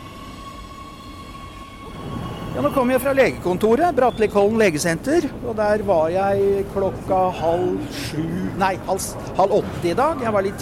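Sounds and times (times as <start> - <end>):
subway train rumbling through an underground station: 0.0 - 10.5
speech: 2.6 - 10.5.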